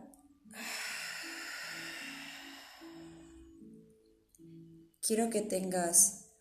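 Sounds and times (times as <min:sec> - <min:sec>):
soft low sustained humming tones: 0:00.0 - 0:04.8
long deep exhale during a breathing exercise: 0:00.5 - 0:03.8
speech: 0:05.1 - 0:06.2.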